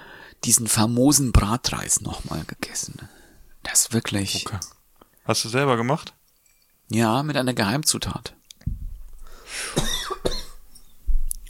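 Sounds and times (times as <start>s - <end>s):
speech: 0.4s - 6.2s, 6.9s - 8.4s
sharp raspy coughs: 9.6s - 10.6s.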